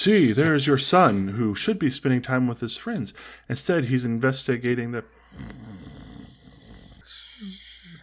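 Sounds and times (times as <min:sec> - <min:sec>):
speech: 0:00.0 - 0:05.8
person imitating soft snoring: 0:05.2 - 0:08.0.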